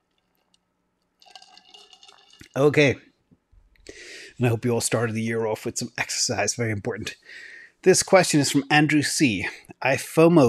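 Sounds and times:
person sipping and swallowing water: 0:01.2 - 0:02.6
speech: 0:02.6 - 0:03.1, 0:04.4 - 0:10.4.

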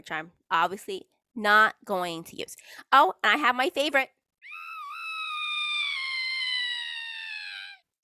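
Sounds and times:
speech: 0:00.0 - 0:04.2
long high-pitched scream sound effect: 0:04.4 - 0:07.8.

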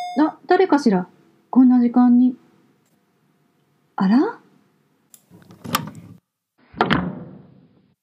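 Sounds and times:
speech: 0:00.2 - 0:02.4, 0:04.0 - 0:04.4
front door being opened: 0:05.3 - 0:07.3.

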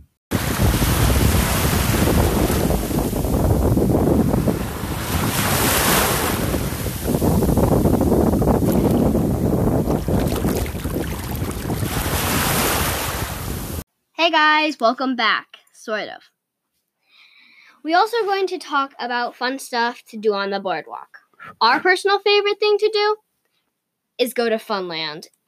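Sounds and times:
heavy wind buffeting the microphone: 0:00.3 - 0:13.8
ocean surf in Delaware: 0:00.3 - 0:13.8
speech: 0:14.3 - 0:16.3, 0:17.8 - 0:23.2, 0:24.2 - 0:25.4.

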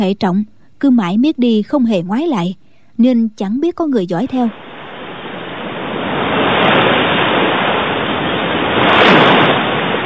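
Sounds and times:
speech: 0:00.0 - 0:04.6
waves crashing against a rocky shore: 0:04.4 - 0:10.0.

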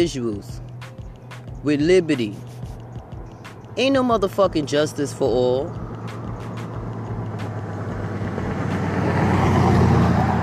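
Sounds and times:
speech: 0:00.0 - 0:00.7, 0:01.6 - 0:02.5, 0:03.8 - 0:05.8
cars driving by: 0:00.0 - 0:10.4
wind buffeting: 0:02.8 - 0:10.4.

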